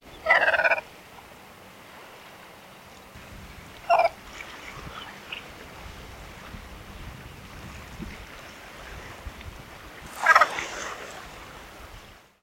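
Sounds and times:
red-faced cormorant calling: 0.0s - 0.9s, 3.8s - 5.6s, 10.1s - 10.8s.

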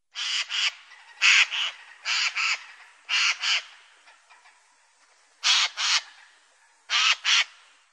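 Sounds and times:
jay calling: 0.1s - 4.5s, 5.4s - 6.3s, 6.9s - 7.6s.

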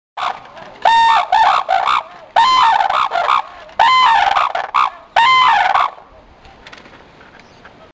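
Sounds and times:
red-crowned crane calling: 0.2s - 6.2s.

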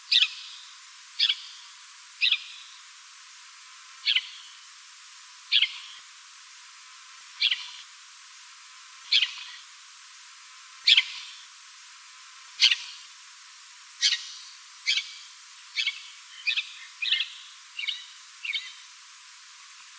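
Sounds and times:
lesser grey shrike calling: 0.1s - 0.6s, 2.2s - 2.7s, 4.0s - 4.6s, 5.5s - 6.0s, 7.4s - 7.8s, 9.1s - 9.6s, 10.8s - 11.4s, 12.6s - 13.0s, 14.0s - 18.9s.

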